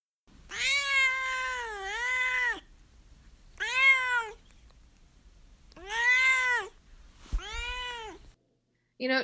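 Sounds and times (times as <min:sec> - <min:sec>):
domestic cat meowing: 0:00.5 - 0:02.7, 0:03.6 - 0:04.4, 0:05.8 - 0:06.8, 0:07.4 - 0:08.3
speech: 0:09.0 - 0:09.2.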